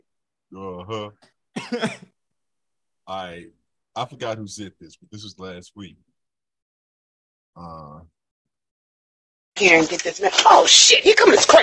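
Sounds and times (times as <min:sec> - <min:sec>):
speech: 0:00.5 - 0:02.1, 0:03.1 - 0:06.1, 0:07.6 - 0:08.2, 0:09.6 - 0:11.6
throat clearing: 0:01.6 - 0:02.1.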